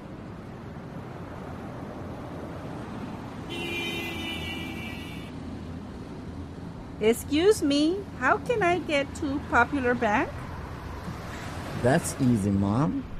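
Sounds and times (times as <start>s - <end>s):
street traffic rumble at a downtown bus stop in San Jose: 0.0s - 13.1s
speech: 7.0s - 10.4s, 11.8s - 13.1s.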